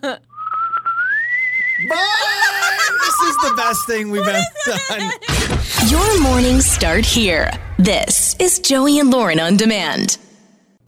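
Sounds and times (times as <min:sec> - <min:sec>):
speech: 0:00.0 - 0:00.3, 0:01.8 - 0:10.2
person whistling a goodbye tune: 0:00.3 - 0:02.0, 0:02.6 - 0:04.2
laughter: 0:01.8 - 0:05.8.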